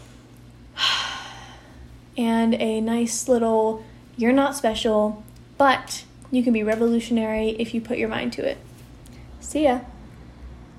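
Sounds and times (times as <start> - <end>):
deep breath: 0.0 - 2.0
speech: 2.2 - 8.7, 9.4 - 9.9.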